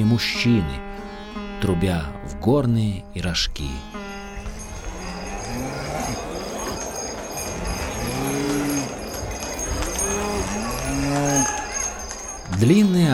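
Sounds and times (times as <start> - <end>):
speech: 0.0 - 1.0, 1.6 - 4.0, 12.6 - 13.1
cows mooing: 0.0 - 12.9
laughter: 4.4 - 13.1.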